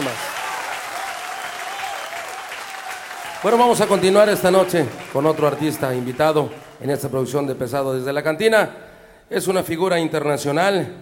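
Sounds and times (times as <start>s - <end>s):
cantina audience applauding at a live regional Mexican music show in Nuevo León: 0.0s - 7.4s
speech: 3.4s - 10.9s.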